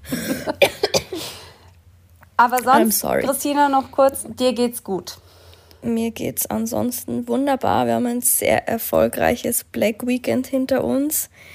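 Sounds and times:
raspy coughing: 0.0 - 1.6
speech: 2.4 - 5.2, 5.8 - 11.5.

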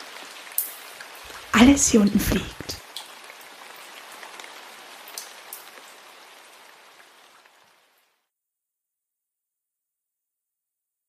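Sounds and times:
steady rain pattering on a hard surface: 0.0 - 8.2
speech: 1.6 - 2.8.

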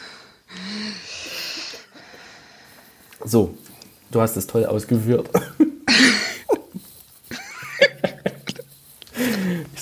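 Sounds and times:
speech: 3.2 - 5.4
person coughing: 5.3 - 6.6.

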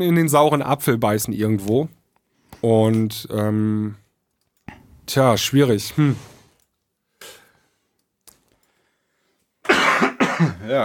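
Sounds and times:
speech: 0.0 - 2.0, 2.6 - 4.0, 5.1 - 6.3, 10.4 - 10.8
person coughing: 9.7 - 10.8
throat clearing: 9.7 - 10.8.

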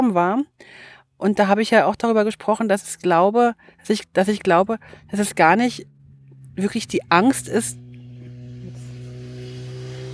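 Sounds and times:
speech: 0.0 - 5.9, 6.6 - 7.8
motorcycle engine droning on a mountain road: 3.5 - 10.1.

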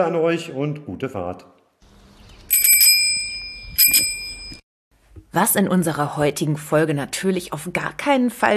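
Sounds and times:
speech: 0.0 - 1.6, 3.9 - 4.2, 5.3 - 8.5
old-fashioned bicycle bell from 1950 ringing: 2.5 - 4.6.

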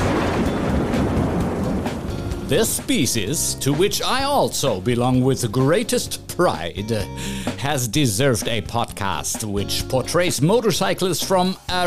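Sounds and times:
storm noise: 0.0 - 4.7
thunder rumbling: 0.0 - 4.8
speech: 2.5 - 11.8.

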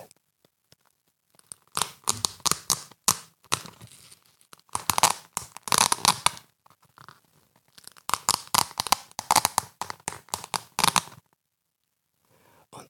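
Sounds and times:
velcro fastener ripping apart: 1.3 - 11.3.

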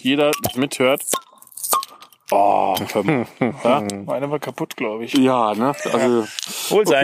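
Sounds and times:
people chatting: 0.0 - 1.1, 2.3 - 7.0
speech: 0.0 - 1.3, 2.3 - 7.0
bottles of naturally cloudy unfiltered Helles beer being opened: 0.3 - 2.1
laughter: 5.5 - 7.0.

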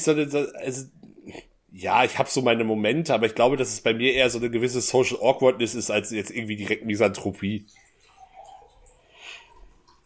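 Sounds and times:
speech: 0.0 - 7.8
liquid pouring into a cup: 6.3 - 10.0.

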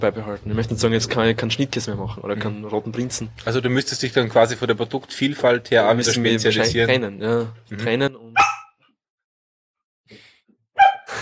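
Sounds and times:
speech: 0.0 - 8.3
dog barking while playing after a thrown ball: 8.4 - 8.8, 10.8 - 11.1.

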